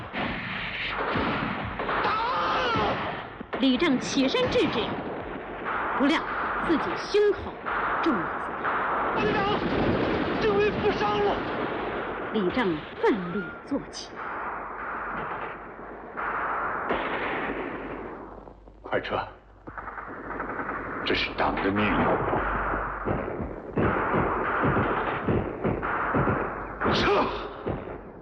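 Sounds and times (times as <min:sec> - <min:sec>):
heavy artillery shell explosions booming on an empty position: 0:00.0 - 0:28.2
rapid battle gunfire cracks: 0:00.0 - 0:28.2
indistinct voices shouting: 0:01.9 - 0:03.1, 0:09.2 - 0:09.7.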